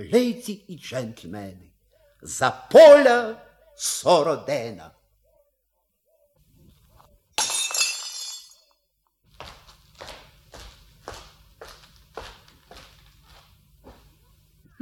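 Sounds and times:
speech: 0.0 - 5.0
wine glass being smashed: 7.4 - 8.8
footsteps: 9.3 - 14.4.

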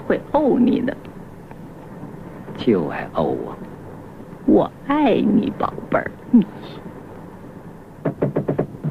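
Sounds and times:
speech: 0.1 - 1.1, 2.6 - 3.7, 4.5 - 6.9
knocking on a door: 8.0 - 8.8.

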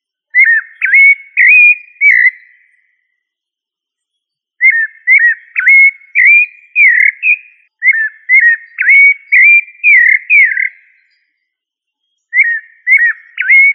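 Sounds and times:
thrush of family Turdidae singing varied fluting whistles: 0.4 - 2.4, 4.6 - 10.7, 12.4 - 13.7.

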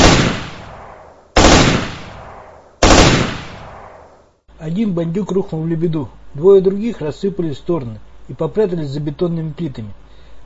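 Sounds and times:
automatic rifle fire bursts: 1.4 - 2.1, 2.8 - 3.6
speech: 4.6 - 10.1.

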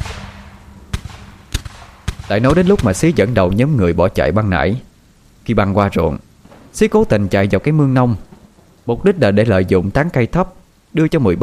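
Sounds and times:
gunshots at a burning water plant in the rain: 0.0 - 3.4
steady hiss: 0.0 - 11.4
speech: 2.3 - 4.9, 5.5 - 6.2, 6.8 - 11.4.

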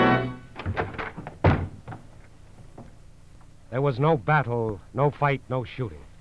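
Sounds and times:
bedroom door rushed open with heavy wooden thuds and bangs: 0.5 - 2.1
speech: 3.7 - 6.1.

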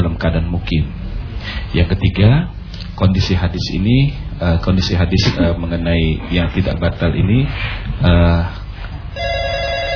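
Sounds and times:
speech: 0.0 - 8.6
telephone ringing with an incoming call: 9.2 - 9.9.

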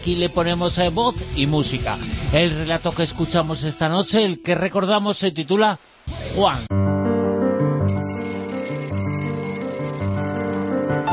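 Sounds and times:
speech: 0.0 - 6.7
alarm clock ringing: 7.9 - 11.1.

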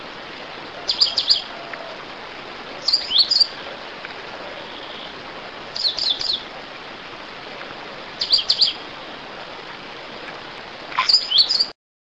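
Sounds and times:
constant soft hiss: 0.0 - 11.7
Coal-crested finch Charitospiza eucosma singing: 0.8 - 1.5, 2.8 - 3.6, 5.8 - 6.4, 8.2 - 8.8, 11.0 - 11.7.

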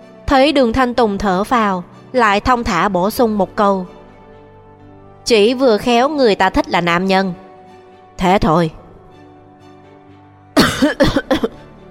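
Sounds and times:
speech: 0.3 - 4.0, 5.2 - 7.4, 8.2 - 8.8, 10.8 - 11.4
person choking and coughing on saliva: 10.6 - 11.6.

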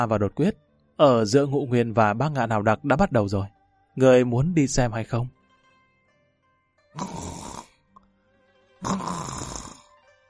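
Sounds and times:
speech: 0.0 - 5.4, 6.9 - 7.4, 8.8 - 9.2
soft snoring of a sleeping man: 7.0 - 7.7, 8.8 - 9.9.

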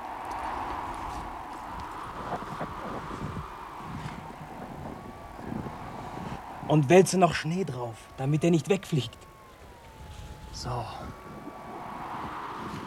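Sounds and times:
horse hooves clip-clopping in a snowy outdoor scene: 0.0 - 5.0
steady rushing noise: 0.0 - 12.8
speech: 6.7 - 9.2, 10.6 - 11.2.

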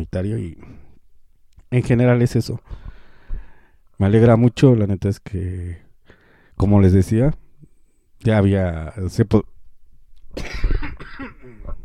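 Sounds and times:
speech: 0.0 - 0.8, 1.7 - 2.8, 4.0 - 5.8, 6.6 - 7.4, 8.2 - 9.5, 10.4 - 10.8
person coughing: 10.4 - 11.8.

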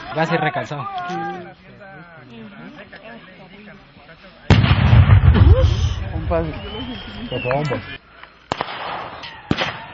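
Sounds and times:
speech: 0.2 - 1.6, 5.5 - 8.0
gunshots during a clash between security forces and civilians in Colombia: 4.5 - 6.4, 8.5 - 9.9.

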